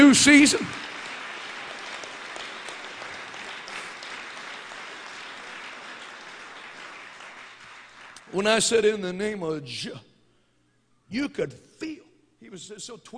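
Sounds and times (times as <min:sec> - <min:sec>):
congregation applause at a church service: 0:00.0 - 0:09.0
speech: 0:00.1 - 0:00.9, 0:08.4 - 0:10.1, 0:11.1 - 0:13.1.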